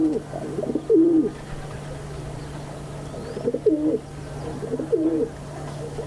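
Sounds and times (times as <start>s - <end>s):
rock doves cooing: 0.0s - 6.0s
steady low hum: 0.0s - 6.0s.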